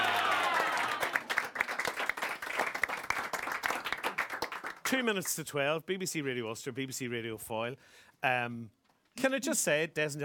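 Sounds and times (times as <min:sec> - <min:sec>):
audience applauding: 0:00.0 - 0:05.0
speech: 0:04.9 - 0:10.2.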